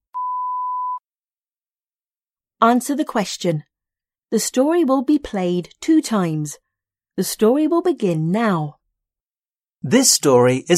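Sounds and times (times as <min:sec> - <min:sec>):
steady electronic beep at one pure pitch: 0:00.1 - 0:01.0
speech: 0:02.6 - 0:03.7, 0:04.3 - 0:06.6, 0:07.2 - 0:08.8, 0:09.8 - 0:10.7.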